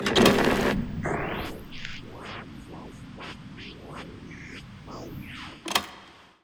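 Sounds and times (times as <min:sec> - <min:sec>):
basement record player: 0:00.0 - 0:06.2.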